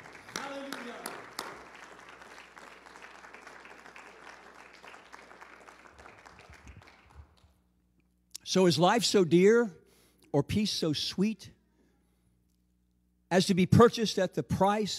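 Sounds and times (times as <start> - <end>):
congregation clapping: 0.0 - 7.6
speech: 8.5 - 11.6, 13.3 - 14.9.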